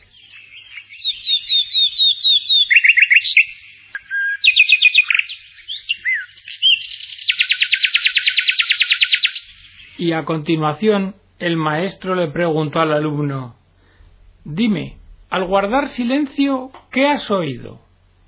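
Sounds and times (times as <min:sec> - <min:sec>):
nightingale singing: 0:00.0 - 0:10.2
speech: 0:10.0 - 0:13.6, 0:14.4 - 0:17.8.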